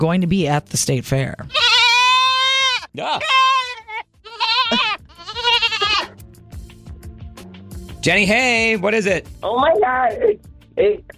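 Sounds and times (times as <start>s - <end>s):
speech: 0.0s - 1.7s, 2.9s - 3.5s, 8.0s - 11.1s
baby goat bleating: 1.5s - 6.2s.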